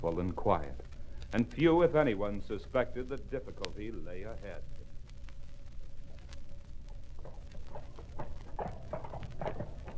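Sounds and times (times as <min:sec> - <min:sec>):
speech: 0:00.0 - 0:04.8
horse hooves clip-clopping during a ride to market: 0:05.9 - 0:09.9.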